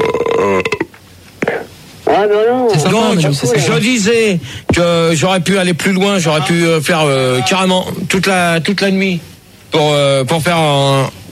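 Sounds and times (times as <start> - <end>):
person burping: 0.0 - 0.9
speech: 2.2 - 11.2.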